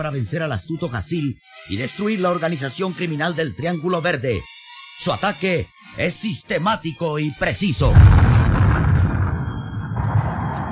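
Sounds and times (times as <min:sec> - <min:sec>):
speech: 0:00.0 - 0:08.3
deep booming explosion rumble with heavy low-end roar: 0:07.9 - 0:10.6.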